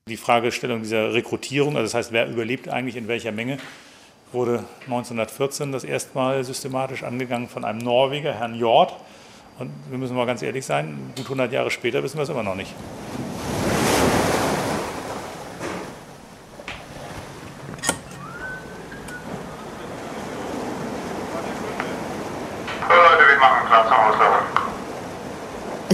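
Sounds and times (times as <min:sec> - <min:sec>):
speech: 0:00.1 - 0:13.2
gentle wind blowing across open water: 0:12.5 - 0:25.9
small waves lapping and rippling: 0:12.6 - 0:25.9.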